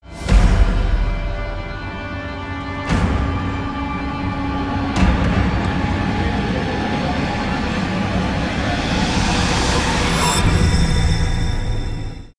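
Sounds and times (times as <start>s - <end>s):
scary sound effect: 0.0s - 12.3s.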